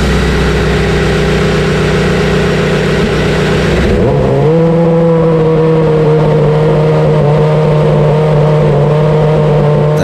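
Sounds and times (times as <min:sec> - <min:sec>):
V8 race car engine firing up and idling during a live demo: 0:00.0 - 0:10.0.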